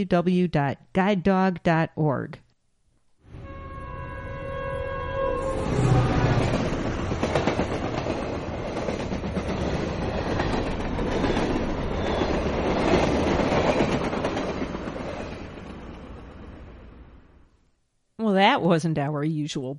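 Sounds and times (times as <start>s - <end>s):
speech: 0.0s - 2.4s, 18.4s - 19.7s
work train horn blast: 3.3s - 6.5s
work train wheels clacking over track joints: 6.4s - 15.8s.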